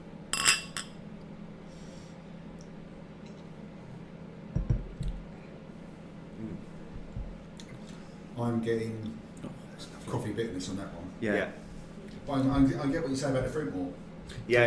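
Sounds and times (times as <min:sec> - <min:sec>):
beer glasses clinking in a toast: 0:00.4 - 0:01.0
soft knocks and thuds: 0:04.5 - 0:05.0, 0:06.9 - 0:07.4
speech: 0:08.4 - 0:09.2, 0:10.2 - 0:11.6, 0:12.3 - 0:14.6.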